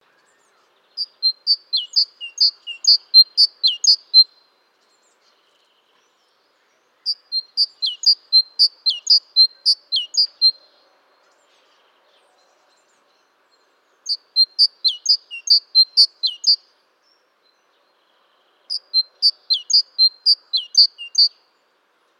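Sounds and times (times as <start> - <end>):
great tit calling: 1.0 - 4.3, 7.1 - 10.6, 14.0 - 16.6, 18.7 - 21.4.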